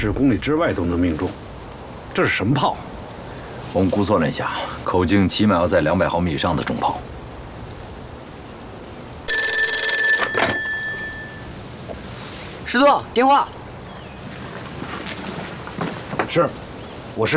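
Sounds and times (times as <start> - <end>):
speech: 0.0 - 1.5, 2.2 - 2.9, 3.7 - 7.1, 12.7 - 13.6, 16.3 - 16.6, 17.2 - 17.3
steady windy hiss: 0.0 - 17.3
old-style telephone bell ringing: 9.3 - 11.5.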